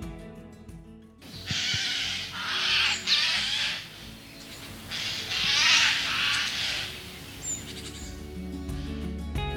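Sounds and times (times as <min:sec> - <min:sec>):
soft music: 0:00.0 - 0:09.5
Eurasian jay screeching: 0:01.4 - 0:03.9, 0:04.8 - 0:08.1.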